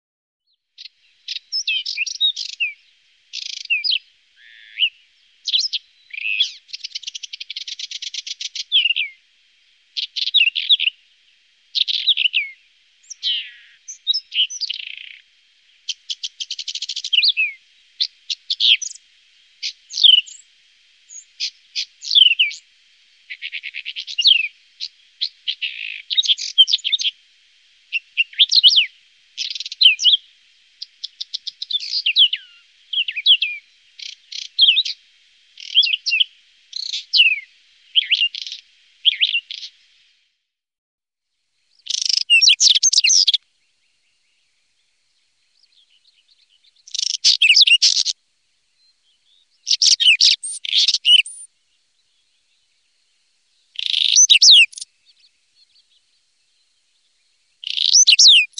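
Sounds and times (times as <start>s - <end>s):
common stonechat singing: 0.5s - 9.3s, 9.9s - 20.5s, 21.1s - 27.2s, 27.9s - 35.0s, 35.6s - 39.8s, 41.7s - 58.5s.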